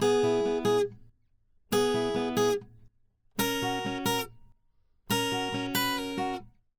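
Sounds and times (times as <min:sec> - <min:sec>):
pop rock acoustic guitar arpeggio in C sharp minor: 0:00.0 - 0:01.0, 0:01.7 - 0:02.8, 0:03.4 - 0:04.4, 0:05.1 - 0:06.5.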